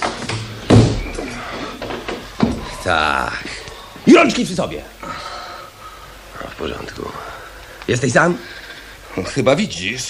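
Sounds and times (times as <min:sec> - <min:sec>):
door swinging shut: 0:00.0 - 0:03.0
speech: 0:02.9 - 0:05.2, 0:06.6 - 0:08.6, 0:09.2 - 0:10.0.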